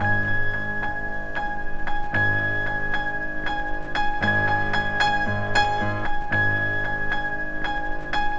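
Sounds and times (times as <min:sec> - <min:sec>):
sad dark piano loop: 0:00.0 - 0:08.3.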